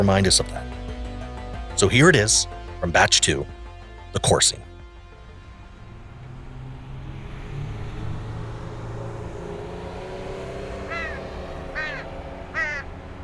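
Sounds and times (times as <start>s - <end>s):
speech: 0.0s - 0.8s, 1.8s - 4.7s
regularly fed crow cawing: 10.8s - 12.9s.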